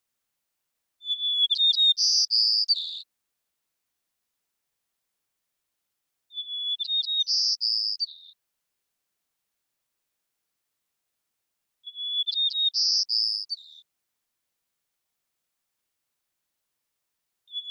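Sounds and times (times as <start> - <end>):
White-crowned sparrow Zonotrichia leucophrys song: 0.9 - 3.3, 6.2 - 8.6, 11.7 - 14.1, 17.4 - 17.6.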